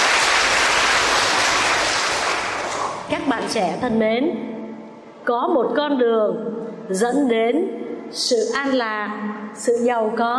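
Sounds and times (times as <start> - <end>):
audience of children applauding at a Buddhist day of practice: 0.0 - 3.1
speech: 3.5 - 4.5, 5.2 - 10.3.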